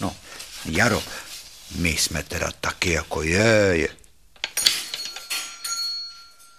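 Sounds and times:
speech: 0:00.0 - 0:04.0
small bell jingling: 0:04.6 - 0:06.5.

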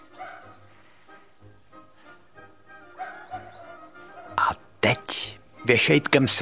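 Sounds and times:
dog barking: 0:00.0 - 0:00.7, 0:02.8 - 0:04.5
speech: 0:04.8 - 0:06.4.

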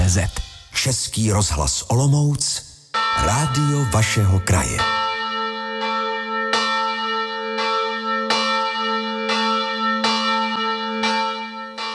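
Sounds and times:
speech: 0:00.1 - 0:05.0
church bell tolling to mark noon: 0:02.9 - 0:11.9.

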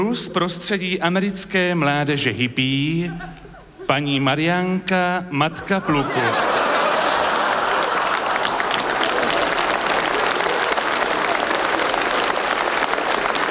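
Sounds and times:
speech: 0:00.0 - 0:06.6
laughter: 0:02.8 - 0:04.3, 0:05.5 - 0:13.4
sustained applause from an audience: 0:06.1 - 0:13.4.

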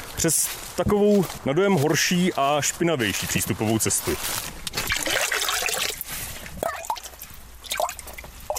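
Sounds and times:
speech: 0:00.2 - 0:04.6
spring water trickling: 0:04.7 - 0:08.5.

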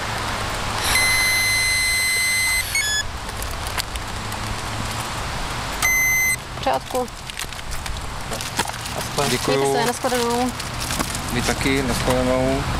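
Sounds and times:
constant outdoor noise at a mountain pass: 0:00.0 - 0:12.7
breathalyzer tone during a police breath test of a motorcyclist: 0:00.8 - 0:03.0, 0:05.8 - 0:06.4
speech: 0:06.7 - 0:07.3, 0:09.2 - 0:10.7, 0:11.3 - 0:12.7.

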